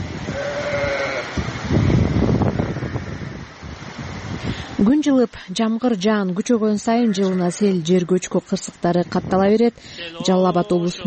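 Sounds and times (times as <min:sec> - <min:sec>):
rough steady wind noise: 0:00.0 - 0:05.0, 0:06.4 - 0:10.0
sheep bleating in a yard in Bazar-Korgon district during a rain-driven mudflow: 0:00.3 - 0:01.3, 0:10.0 - 0:11.0
speech: 0:04.8 - 0:11.0.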